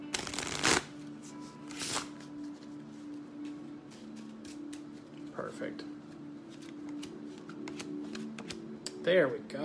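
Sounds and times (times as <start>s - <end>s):
deck of cards being shuffled: 0.1s - 5.3s, 6.5s - 8.7s
speech: 5.5s - 6.0s, 9.0s - 9.6s.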